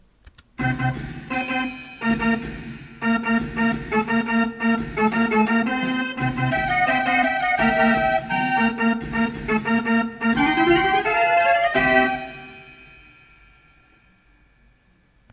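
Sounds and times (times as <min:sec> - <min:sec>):
barrel organ playing: 0:00.6 - 0:13.5.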